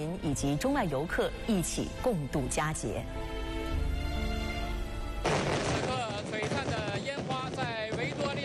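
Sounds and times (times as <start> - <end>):
music: 0.0 - 6.4
speech: 0.2 - 3.4
fireworks bursting over Victoria Harbour at National Day display: 5.2 - 8.4.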